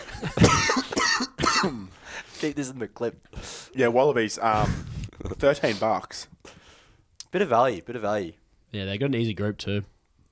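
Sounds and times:
person coughing: 0:00.1 - 0:01.9
speech: 0:00.2 - 0:00.4, 0:01.6 - 0:06.4, 0:07.3 - 0:09.9.

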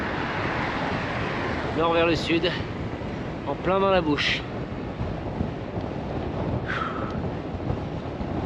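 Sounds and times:
strong wind roaring across the microphone: 0:00.0 - 0:08.4
speech: 0:01.8 - 0:02.8, 0:03.5 - 0:04.5.

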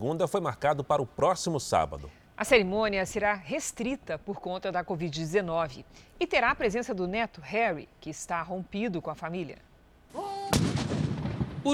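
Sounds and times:
speech: 0:00.0 - 0:09.7
ceremonial cannon salute blast outdoors: 0:10.5 - 0:11.7.

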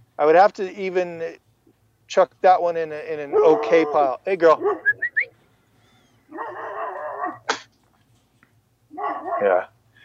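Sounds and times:
speech: 0:00.2 - 0:01.4, 0:02.1 - 0:05.0, 0:09.4 - 0:09.7
dog barking: 0:03.3 - 0:05.0, 0:06.3 - 0:07.4, 0:08.9 - 0:09.7.

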